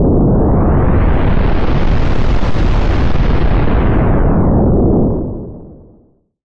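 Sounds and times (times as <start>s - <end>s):
explosion: 0.0s - 6.1s.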